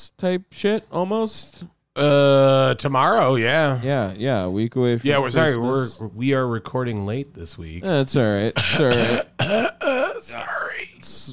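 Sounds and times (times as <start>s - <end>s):
speech: 0.2s - 11.3s
throat clearing: 8.6s - 10.2s
person coughing roughly: 8.6s - 10.3s.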